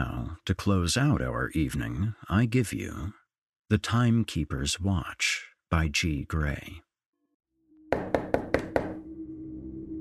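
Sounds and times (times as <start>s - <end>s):
speech: 0.0s - 6.8s
firm knocking on a front door: 7.9s - 9.0s.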